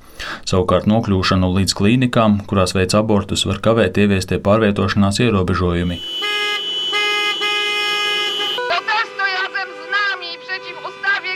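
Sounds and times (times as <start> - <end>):
speech: 0.4 - 6.4
car horns honking in the central streets of Warsaw during a protest: 5.8 - 11.3.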